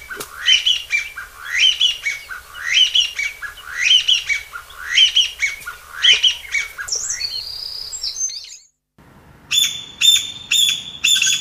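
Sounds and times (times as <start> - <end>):
Chinese bamboo partridge giving squawky rising phrases: 0.0 - 8.7, 9.5 - 11.3.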